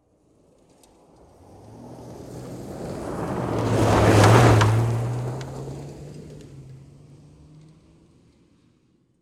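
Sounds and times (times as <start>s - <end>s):
SUV passing on gravel: 1.0s - 8.3s.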